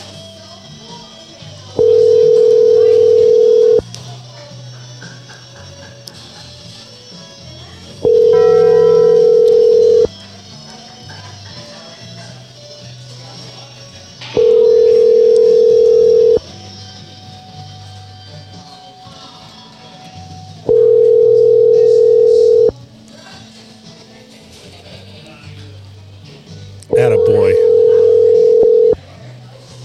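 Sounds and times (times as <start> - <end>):
outgoing phone call ringback tones: 1.8 - 3.8, 8.0 - 10.1, 14.4 - 16.4, 20.7 - 22.7, 26.9 - 29.0.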